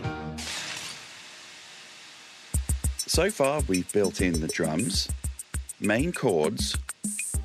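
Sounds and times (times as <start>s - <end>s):
low musical tone: 3.0s - 5.1s, 5.8s - 6.8s
speech: 3.2s - 5.2s, 5.8s - 6.8s.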